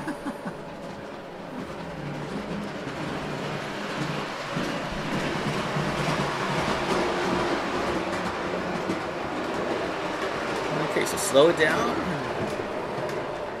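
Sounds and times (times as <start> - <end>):
laughter: 0.0 - 0.8
train running into a station rumbling: 0.0 - 13.5
speech: 11.3 - 12.0.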